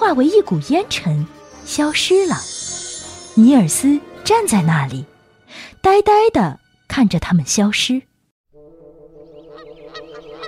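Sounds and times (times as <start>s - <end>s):
speech: 0.1s - 2.6s, 3.4s - 8.1s
wild geese honking: 9.2s - 10.4s.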